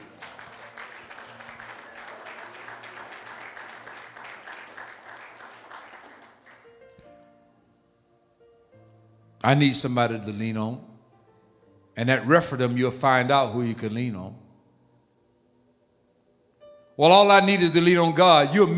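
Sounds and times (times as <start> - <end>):
audience clapping hands in steady rhythmic beats: 0.0 - 7.0
sustained organ or music tones: 0.0 - 15.9, 16.6 - 18.7
speech: 9.4 - 10.9, 12.0 - 14.4, 17.0 - 18.7.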